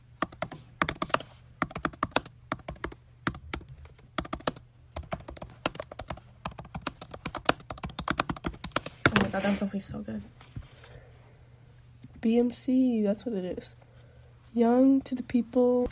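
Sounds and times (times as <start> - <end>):
typing on a computer keyboard: 0.2 - 8.9
speech: 9.4 - 10.4, 12.2 - 13.8, 14.6 - 15.9.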